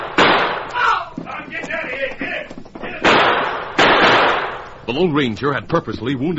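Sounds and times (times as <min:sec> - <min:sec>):
revolver gunshots in a Western shootout at the edge of an arroyo: 0:00.0 - 0:00.8, 0:02.9 - 0:04.8
speech: 0:04.9 - 0:06.3.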